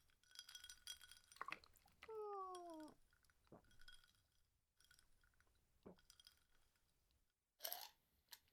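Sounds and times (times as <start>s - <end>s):
glasses clinking in a toast: 0.0s - 4.2s, 4.8s - 6.8s
sipping: 0.0s - 4.2s
soft clatters: 0.0s - 7.0s
tea pouring: 0.0s - 7.0s.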